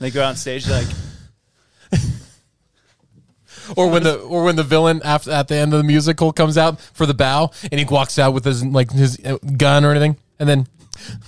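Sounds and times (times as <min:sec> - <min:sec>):
speech: 0:00.0 - 0:01.0, 0:03.6 - 0:11.2
person imitating an actor's heavy breathing with a forceful exhale: 0:00.6 - 0:01.4.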